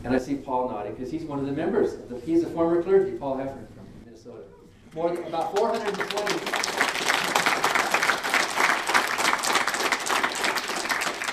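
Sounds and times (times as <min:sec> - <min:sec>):
speech: 0:00.0 - 0:06.8
audience applause: 0:05.0 - 0:11.3.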